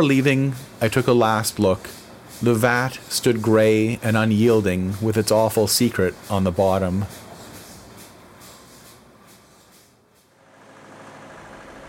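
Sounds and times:
speech: 0.0s - 7.2s
truck engine idling: 10.4s - 11.8s.

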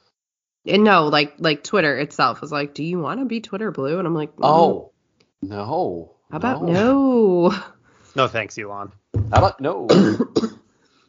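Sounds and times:
speech: 0.6s - 10.6s
cough: 9.9s - 10.7s.

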